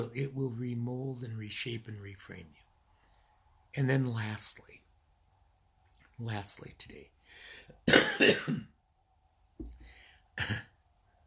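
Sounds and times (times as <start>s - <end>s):
speech: 0.0s - 2.7s, 3.7s - 4.8s, 6.2s - 8.7s, 10.4s - 10.7s
person coughing: 7.8s - 8.7s, 10.4s - 10.8s.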